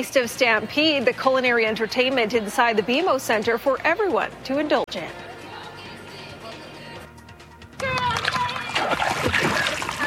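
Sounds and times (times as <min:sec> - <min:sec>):
speech: 0:00.0 - 0:05.3
dog swimming and splashing in water during a swim lesson in Calgary: 0:08.0 - 0:10.0.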